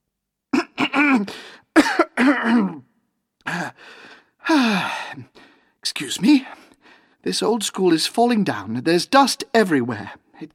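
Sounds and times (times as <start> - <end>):
man coughing harsh hacking coughs: 0.5 - 2.9
speech: 1.1 - 10.5.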